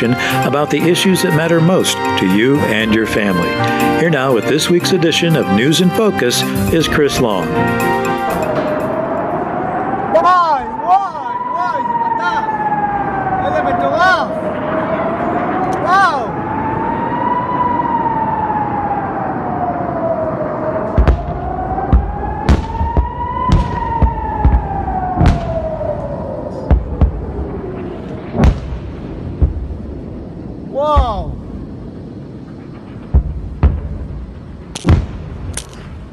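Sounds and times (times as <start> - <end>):
speech: 0.0 - 8.2
rocket attack warning siren wailing in southern Israel: 0.0 - 34.7
explosive booms and thuds from rocket attacks from Gaza: 20.9 - 36.1.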